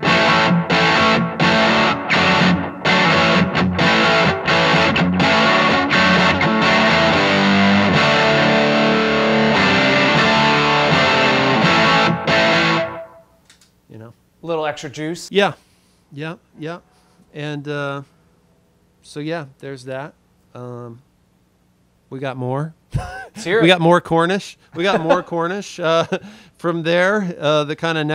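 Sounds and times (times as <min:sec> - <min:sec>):
distorted electric guitar playing a crunchy rock riff: 0:00.0 - 0:13.2
speech: 0:14.7 - 0:18.1, 0:19.0 - 0:21.1, 0:22.1 - 0:28.1.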